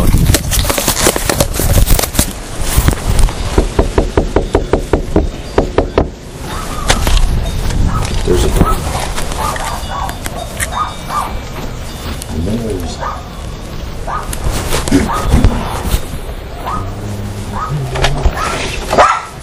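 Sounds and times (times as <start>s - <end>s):
noisy outdoor background: 0.0s - 19.4s
dog barking: 7.9s - 11.4s, 13.0s - 13.3s, 14.0s - 14.3s, 15.0s - 15.4s, 16.6s - 19.4s
pigeon-like cooing: 14.8s - 16.0s, 16.6s - 18.9s.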